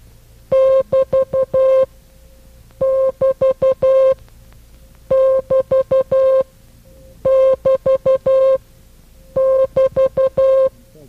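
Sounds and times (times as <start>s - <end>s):
Morse code break sign keyed as a steady mid-pitched tone: 0.5s - 1.9s, 2.8s - 4.2s, 5.1s - 6.5s, 7.2s - 8.6s, 9.3s - 10.8s.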